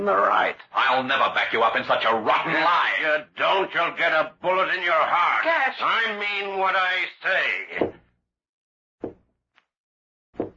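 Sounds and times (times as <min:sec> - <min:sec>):
speech: 0:00.0 - 0:08.0
slow heavy knocks on a door: 0:07.8 - 0:08.1.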